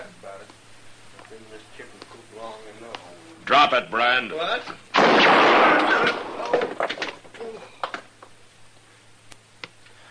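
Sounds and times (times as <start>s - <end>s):
speech: 1.4s - 6.8s
single loud gunshot striking a held gun: 4.9s - 6.9s
rough rattling burst: 4.9s - 7.2s.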